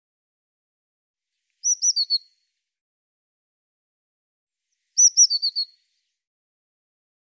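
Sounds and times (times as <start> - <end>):
Eurasian blue tit calling: 1.6 - 2.2, 5.0 - 5.7.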